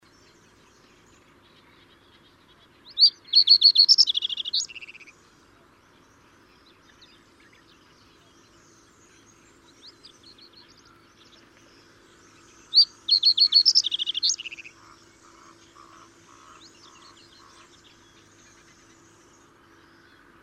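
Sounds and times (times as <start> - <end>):
reed bunting: 2.9 - 5.1, 10.8 - 19.1.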